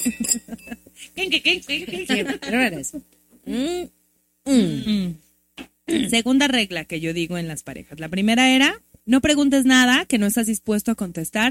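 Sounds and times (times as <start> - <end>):
crystal glasses clinking in a toast: 0.0 - 0.8
speech: 0.0 - 11.4
people laughing: 0.2 - 3.0.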